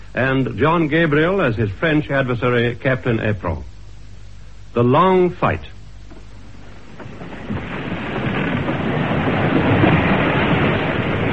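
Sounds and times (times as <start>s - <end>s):
speech: 0.2s - 3.7s, 4.7s - 5.8s
howling storm wind: 6.4s - 11.3s
churning sea in a storm: 6.8s - 11.3s.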